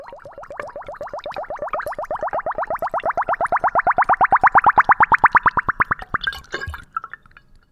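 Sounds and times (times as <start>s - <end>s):
homemade plum wine glugging through a funnel into a bottle: 0.0s - 7.7s.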